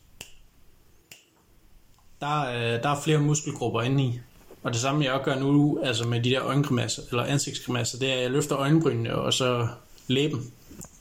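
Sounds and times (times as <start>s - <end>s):
finger snaps from a hand-twisting tic: 0.2s - 2.1s
speech: 2.2s - 10.9s.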